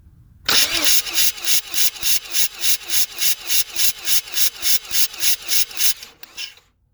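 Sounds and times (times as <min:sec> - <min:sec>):
second generation car failing to start: 0:00.5 - 0:06.6.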